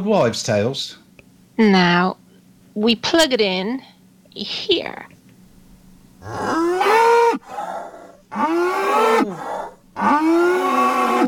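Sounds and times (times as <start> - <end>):
speech: 0.0 - 1.0, 1.6 - 2.2, 2.8 - 5.2, 6.2 - 7.7, 8.3 - 11.2
cow mooing: 6.2 - 11.2.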